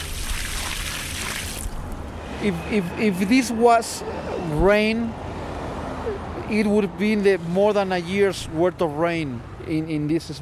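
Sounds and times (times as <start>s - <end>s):
water from a bucket poured onto a permeable concrete parking lot: 0.0s - 1.9s
speech: 2.4s - 5.2s, 6.5s - 10.4s.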